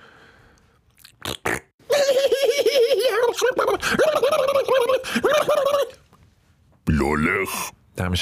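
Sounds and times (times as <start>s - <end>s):
person blowing a raspberry with lips imitating a fart: 1.2s - 1.7s
laughter: 1.9s - 6.0s
speech: 7.0s - 8.1s.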